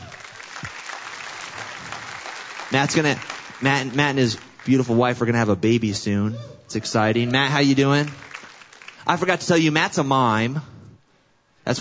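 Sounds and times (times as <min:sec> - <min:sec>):
audience applause: 0:00.0 - 0:05.2, 0:07.3 - 0:09.4
speech: 0:02.7 - 0:08.2, 0:09.0 - 0:10.7.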